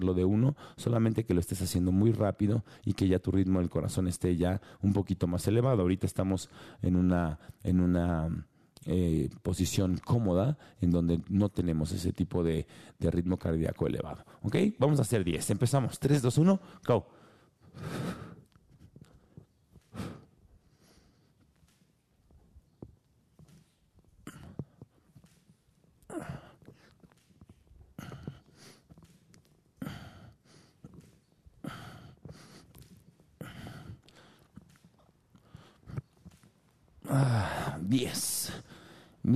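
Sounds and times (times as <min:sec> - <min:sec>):
speech: 0:00.0 - 0:17.2, 0:17.8 - 0:18.2, 0:37.1 - 0:38.6
person breathing forcefully and quickly during exercise: 0:06.5 - 0:06.8, 0:12.7 - 0:13.0, 0:16.6 - 0:21.5, 0:27.8 - 0:36.4, 0:37.0 - 0:39.2.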